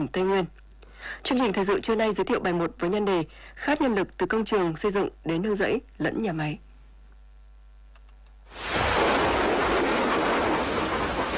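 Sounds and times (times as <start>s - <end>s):
speech: 0.0s - 6.7s
broad hissing roar of a thunderstorm: 8.5s - 11.3s
rolling thunder in an early rainy season thunderstorm in Đắk Lắk: 8.6s - 11.3s.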